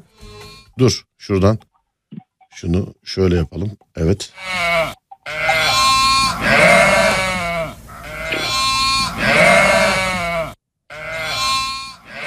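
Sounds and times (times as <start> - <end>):
sheep bleating for its lamb: 0.1 - 0.8, 4.3 - 12.2
speech: 0.8 - 1.7, 2.6 - 5.0.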